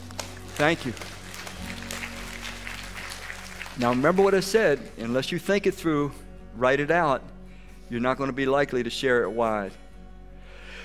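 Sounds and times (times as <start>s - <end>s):
audience applause: 0.0s - 5.2s
speech: 0.6s - 1.2s, 3.8s - 7.3s, 7.9s - 9.8s.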